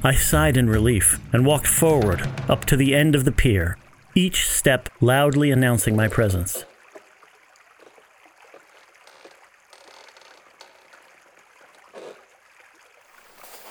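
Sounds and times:
speech: 0.0s - 6.7s
river water flowing: 2.8s - 13.6s.

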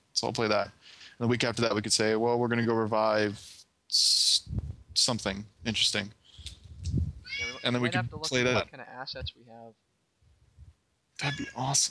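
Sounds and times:
speech: 0.2s - 6.6s, 7.4s - 9.9s, 11.2s - 11.9s
cat meowing: 7.3s - 8.0s, 11.2s - 11.8s.

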